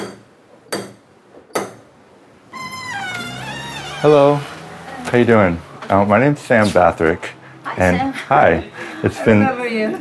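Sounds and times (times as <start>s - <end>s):
door creaking open with high wavering squeal: 2.5s - 5.2s
speech: 4.0s - 4.5s, 5.1s - 10.0s.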